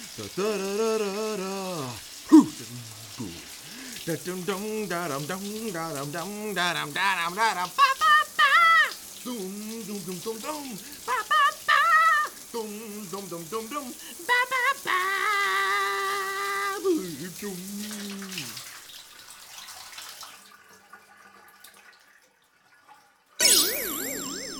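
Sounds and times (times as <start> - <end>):
man singing wordless syllables: 0.0 - 18.6
shower water running with a steady hiss: 0.0 - 24.5
speech: 0.2 - 8.2, 9.2 - 11.3, 12.5 - 15.4, 16.8 - 18.3.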